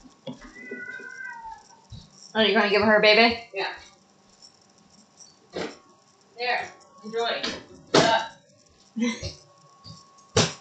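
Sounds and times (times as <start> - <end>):
cat in heat yowling: 0.4 - 1.8
speech: 2.3 - 3.8, 6.4 - 8.3, 9.0 - 9.4.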